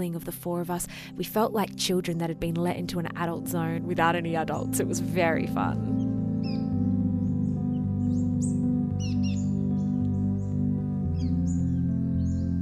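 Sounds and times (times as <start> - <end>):
speech: 0.0 - 6.0
sustained musical tones: 3.0 - 12.6
little birds chirping: 4.4 - 12.6.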